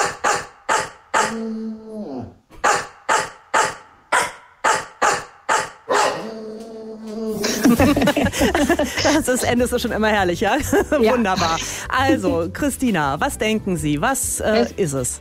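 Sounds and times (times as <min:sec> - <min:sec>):
bulldog barking a tune-like pattern: 0:00.0 - 0:01.4, 0:02.6 - 0:06.3
bulldog howling pitched notes: 0:00.0 - 0:02.4, 0:05.9 - 0:07.6
speech: 0:01.3 - 0:01.8, 0:07.7 - 0:15.1
laughter: 0:07.3 - 0:09.7, 0:10.5 - 0:12.3.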